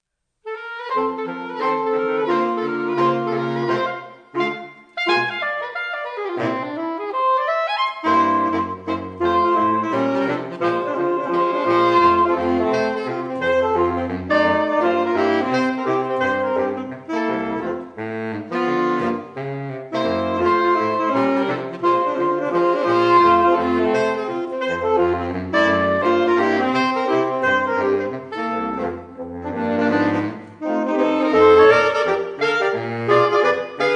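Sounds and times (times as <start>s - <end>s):
saxophone quartet playing: 0.4s - 33.9s.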